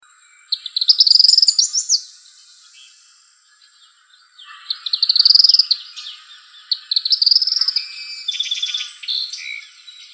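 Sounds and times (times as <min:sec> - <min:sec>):
tropical kingbird twittering trills: 0:00.2 - 0:10.1.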